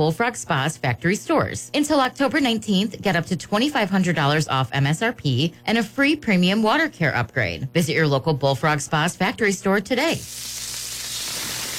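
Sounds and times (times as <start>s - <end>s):
speech: 0.0s - 10.7s
smash burgers sizzling on a grill: 10.1s - 11.7s.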